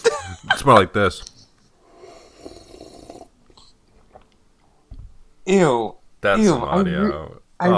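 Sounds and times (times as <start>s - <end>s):
speech: 0.6s - 1.3s, 5.5s - 7.7s
slurp of a hot drink: 1.9s - 3.7s
swallowing: 1.9s - 4.3s.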